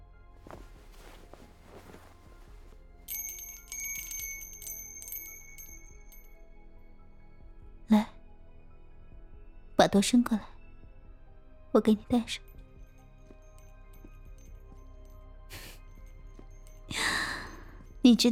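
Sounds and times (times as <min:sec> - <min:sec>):
faint footsteps: 0:00.4 - 0:06.3
small bell jingling: 0:00.5 - 0:06.4, 0:12.5 - 0:18.3
speech: 0:09.8 - 0:10.5, 0:11.7 - 0:12.5, 0:18.1 - 0:18.3.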